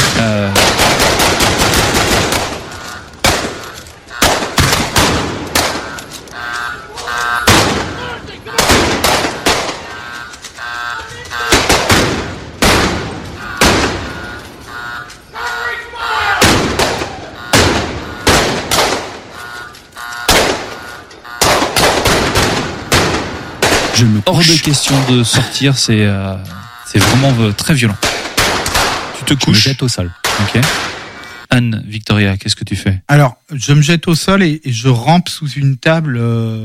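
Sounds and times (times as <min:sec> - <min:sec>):
gunfire shootout by a bank near a diner: 0:00.0 - 0:15.0, 0:16.3 - 0:25.6, 0:26.9 - 0:29.6, 0:30.2 - 0:31.2
speech: 0:25.1 - 0:28.1, 0:29.3 - 0:30.9, 0:31.5 - 0:36.6.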